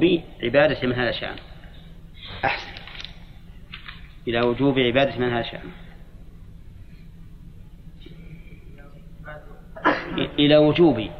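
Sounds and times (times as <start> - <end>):
speech: 0.0 - 1.5, 2.4 - 2.7, 4.2 - 5.8, 10.1 - 11.1
person sneezing: 2.2 - 2.9, 9.8 - 10.3.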